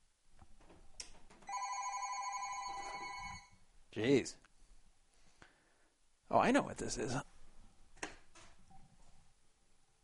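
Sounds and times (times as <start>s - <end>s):
home landline telephone ringing with electronic trill: 1.5s - 3.6s
speech: 4.0s - 4.4s, 6.3s - 7.2s.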